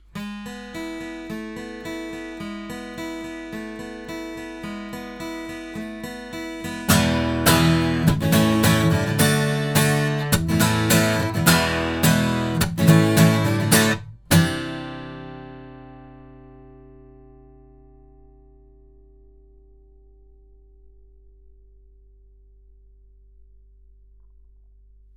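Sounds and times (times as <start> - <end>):
guitar recorded through microphones: 4.7 - 18.5.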